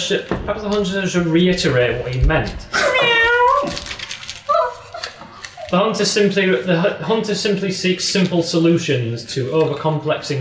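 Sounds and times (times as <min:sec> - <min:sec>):
speech: 0:00.0 - 0:02.9, 0:05.7 - 0:10.3
person imitating cat meows: 0:02.8 - 0:03.8.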